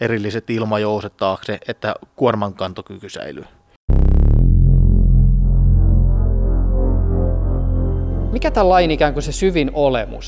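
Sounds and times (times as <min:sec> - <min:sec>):
speech: 0:00.0 - 0:03.6, 0:08.4 - 0:10.2
deep subwoofer bass from a car audio system throbbing: 0:03.9 - 0:09.5.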